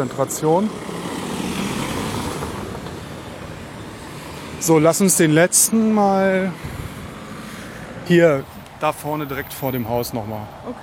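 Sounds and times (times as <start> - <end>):
speech: 0.0 - 1.0, 4.6 - 6.9, 8.1 - 10.8
motor vehicle passing by: 0.2 - 10.4.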